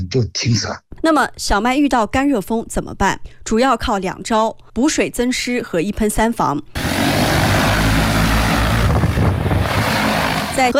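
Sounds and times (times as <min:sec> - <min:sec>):
speech: 0:00.0 - 0:07.3, 0:10.6 - 0:10.7
several agricultural spraying drones flying overhead spraying wheat fields: 0:06.8 - 0:10.7
wind buffeting: 0:06.8 - 0:10.7.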